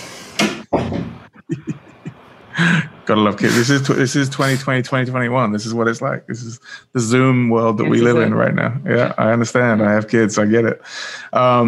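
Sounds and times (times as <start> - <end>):
door pushed shut with a heavy thud: 0.4 - 1.3
laughter: 1.3 - 3.7
speech: 2.6 - 11.6.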